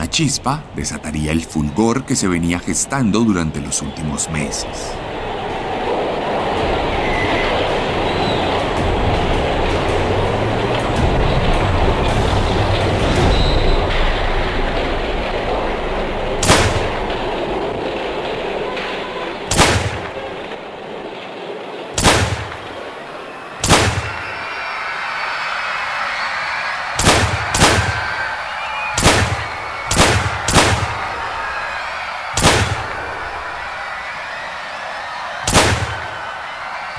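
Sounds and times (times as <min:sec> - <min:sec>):
murmur of a crowd: 0:00.0 - 0:36.9
speech: 0:00.2 - 0:05.3
sharp gunshots fired into a crowd: 0:16.4 - 0:17.3, 0:19.5 - 0:20.6, 0:22.0 - 0:22.9, 0:23.6 - 0:24.5, 0:27.0 - 0:31.3, 0:32.0 - 0:33.2, 0:35.4 - 0:36.3.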